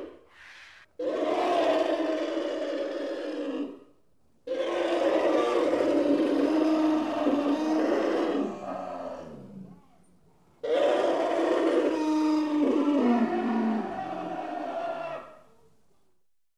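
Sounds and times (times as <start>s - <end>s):
elephant trumpeting: 1.0s - 3.8s, 4.5s - 9.3s, 10.6s - 15.4s.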